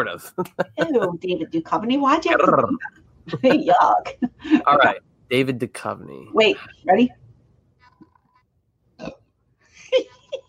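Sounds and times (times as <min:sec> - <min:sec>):
laughter: 0:00.0 - 0:01.3, 0:02.4 - 0:06.0
speech: 0:00.0 - 0:07.2, 0:09.9 - 0:10.1
short throaty burps: 0:09.0 - 0:09.2.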